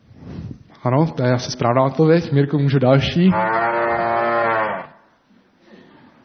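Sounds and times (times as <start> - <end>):
speech: 0.8 - 3.7
fainter lowing from other cattle: 3.3 - 5.0
cow in a herd mooing: 3.3 - 5.1.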